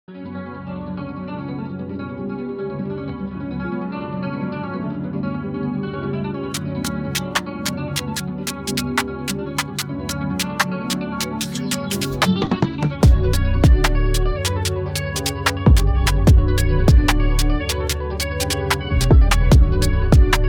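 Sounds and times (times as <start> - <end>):
drill beat: 6.5 - 20.4.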